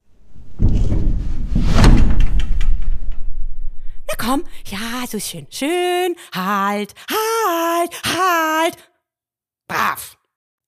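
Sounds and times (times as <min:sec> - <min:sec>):
heavy riding arena door rumbling open along its sliding track: 0:00.0 - 0:05.6
speech: 0:04.2 - 0:08.9, 0:09.7 - 0:10.2.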